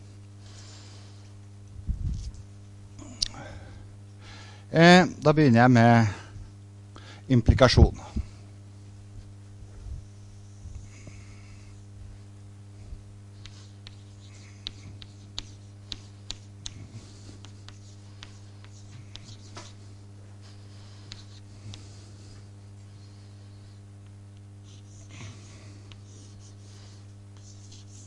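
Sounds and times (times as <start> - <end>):
steady low electrical hum: 0.0 - 28.0
speech: 4.7 - 6.2, 7.3 - 8.0
someone writing on a board: 13.4 - 19.8, 21.0 - 21.9, 24.6 - 25.1, 25.9 - 28.0.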